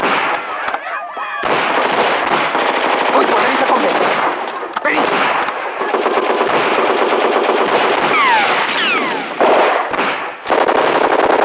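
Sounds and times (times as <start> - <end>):
gunfire in a dramatized shootout: 0.0 - 0.8, 1.4 - 11.4.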